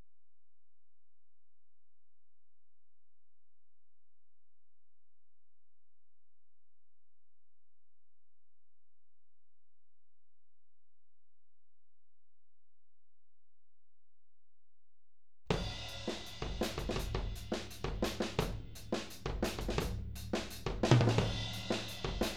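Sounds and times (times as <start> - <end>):
tom drums mix: 15.5 - 22.3.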